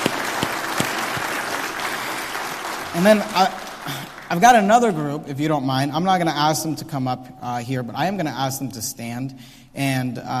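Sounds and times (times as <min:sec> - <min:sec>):
audience applause: 0:00.0 - 0:04.6
speech: 0:03.0 - 0:10.3.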